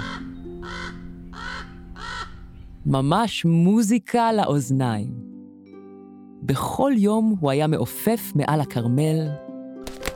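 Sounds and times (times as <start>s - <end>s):
crow cawing: 0.0s - 2.5s
speech: 2.8s - 5.3s, 6.4s - 9.4s.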